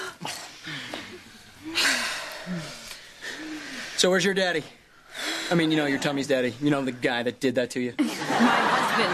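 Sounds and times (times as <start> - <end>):
deep diaphragmatic breathing exercise: 0.0 - 7.1
speech: 4.0 - 4.8, 5.5 - 9.1
laughter: 8.0 - 9.1.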